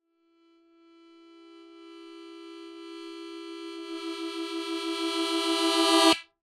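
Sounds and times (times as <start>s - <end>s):
musical harmonica playing: 3.4s - 6.2s.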